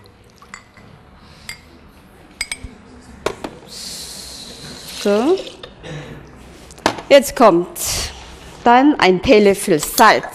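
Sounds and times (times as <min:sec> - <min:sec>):
cup of water pouring while cooking: 0:00.0 - 0:00.8
glass and dishes clinking: 0:00.0 - 0:00.9, 0:02.4 - 0:02.7
speech: 0:05.0 - 0:05.5, 0:07.1 - 0:07.9, 0:08.6 - 0:10.3.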